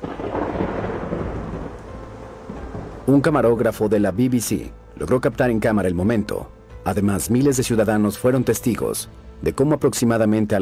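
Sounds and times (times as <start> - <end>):
deep rumble of thunder in a sudden afternoon storm over Beijing: 0.0 - 4.2
heavy rain pouring down in a sudden afternoon storm over Beijing: 0.0 - 4.3
speech: 3.1 - 10.6.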